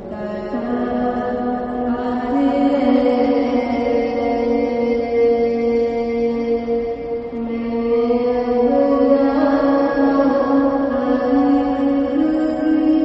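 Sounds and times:
resonant chant or sung prayer in the Lotus Temple: 0.0s - 13.0s.

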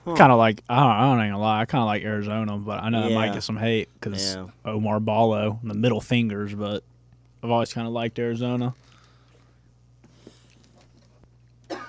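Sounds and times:
speech: 0.0s - 8.9s
low electrical hum: 0.0s - 11.8s
cough: 11.7s - 11.8s.

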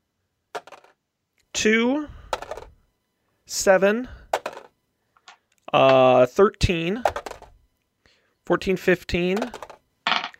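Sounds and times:
six-sided dice clattering onto a hard surface: 0.6s - 0.9s, 4.4s - 4.7s, 7.1s - 7.5s, 9.3s - 10.3s
speech: 1.6s - 2.2s, 3.5s - 4.2s, 5.7s - 7.2s, 8.5s - 9.6s.

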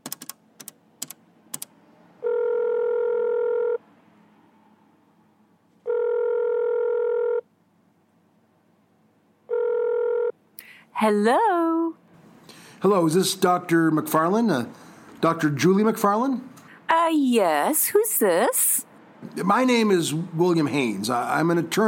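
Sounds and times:
loud steady electronic phone ringing tone on speaker: 2.2s - 3.8s, 5.8s - 7.5s, 9.5s - 10.4s
speech: 11.0s - 11.5s, 12.8s - 18.8s, 19.4s - 21.8s.

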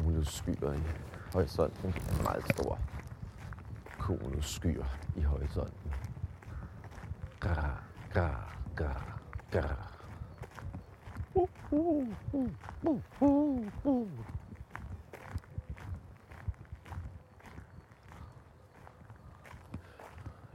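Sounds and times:
steady footsteps crunching outdoors: 0.0s - 20.5s
speech: 0.2s - 3.0s, 4.0s - 6.1s, 7.4s - 9.9s, 11.7s - 14.4s
bird calling with hooting tonal notes in the morning outdoors: 9.9s - 14.6s.

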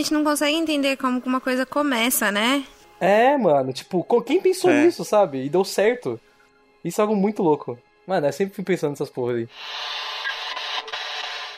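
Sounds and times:
speech: 0.0s - 10.0s
crackling static from signal interference: 9.6s - 11.5s.

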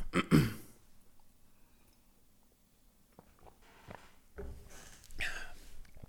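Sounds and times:
speech: 0.1s - 0.6s
person sipping water: 4.8s - 6.0s.

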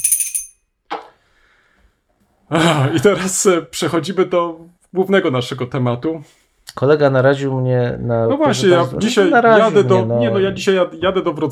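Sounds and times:
small hand bell ringing with a bright high jingle: 0.0s - 0.6s
speech: 2.5s - 11.5s.

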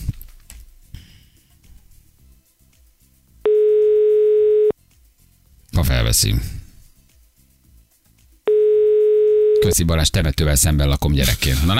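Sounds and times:
loud steady telephone dial tone while calling a listener: 3.5s - 4.7s, 8.5s - 9.6s
speech: 5.8s - 6.6s, 9.7s - 11.7s.

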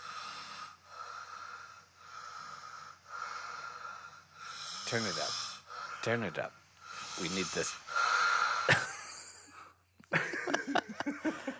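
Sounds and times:
recorded snoring played back: 0.0s - 6.3s, 6.9s - 8.8s
speech: 4.9s - 5.4s, 6.0s - 6.6s, 7.2s - 7.9s
laughter: 10.1s - 11.5s.

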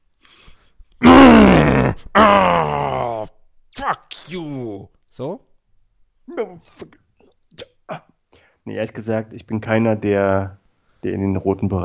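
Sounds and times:
man imitating a strained weightlifting grunt: 1.0s - 4.5s
speech: 2.2s - 2.8s, 8.8s - 11.8s.

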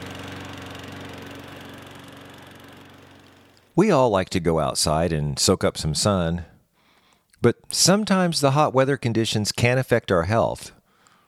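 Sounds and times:
small lawn mower engine running on a hot afternoon: 0.0s - 3.9s
speech: 3.8s - 6.5s, 7.4s - 10.8s.

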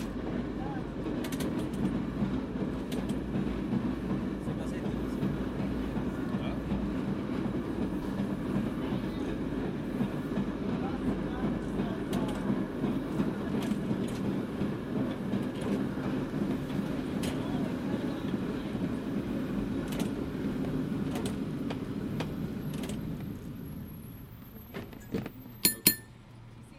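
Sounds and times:
cable car rumbling along its track in San Francisco: 0.0s - 26.7s
cable car bell clanging: 25.6s - 26.2s.

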